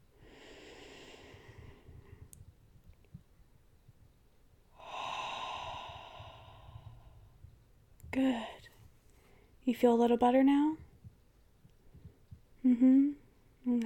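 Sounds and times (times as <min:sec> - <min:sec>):
slow deep breathing: 0:00.1 - 0:02.4, 0:04.7 - 0:07.6
speech: 0:08.2 - 0:08.6, 0:09.7 - 0:10.8.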